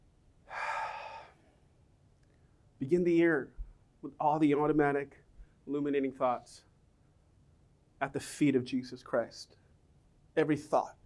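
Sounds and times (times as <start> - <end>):
slow exhale during a guided breathing exercise: 0.5 - 1.6
speech: 2.8 - 6.7, 8.0 - 9.6, 10.4 - 11.0.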